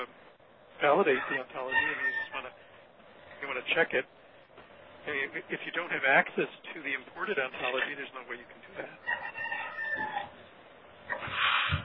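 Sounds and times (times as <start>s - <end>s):
speech: 0.8s - 2.7s, 3.4s - 4.2s, 5.0s - 9.4s
chickens clucking: 0.9s - 2.6s, 8.7s - 10.5s, 11.1s - 11.8s
rooster crowing: 1.2s - 2.4s, 9.0s - 10.4s.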